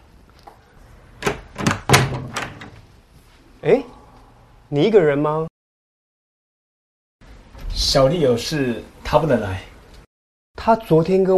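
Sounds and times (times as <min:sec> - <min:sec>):
door latch and handle clunking and rattling as a door is opened: 0:01.2 - 0:02.8
speech: 0:03.6 - 0:04.0, 0:04.7 - 0:05.5, 0:07.9 - 0:09.7, 0:10.6 - 0:11.3.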